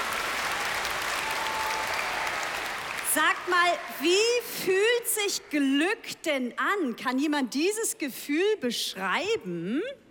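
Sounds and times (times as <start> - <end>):
audience applause for two children: 0.0 - 4.4
speech: 3.2 - 10.0.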